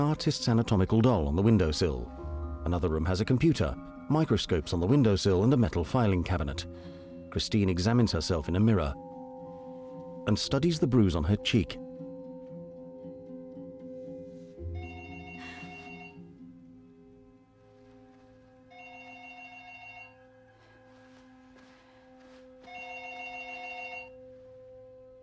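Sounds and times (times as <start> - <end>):
speech: 0.0 - 9.1, 10.3 - 11.8
telephone on a desk in a study ringing: 14.8 - 16.2, 18.7 - 20.5, 22.6 - 24.4.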